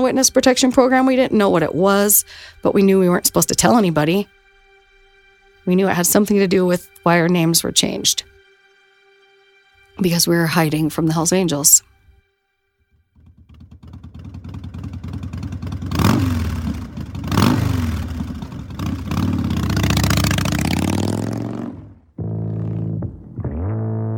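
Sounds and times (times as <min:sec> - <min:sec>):
speech: 0:00.0 - 0:04.4, 0:05.6 - 0:08.3, 0:10.0 - 0:11.9
motorcycle engine revving: 0:13.2 - 0:24.0.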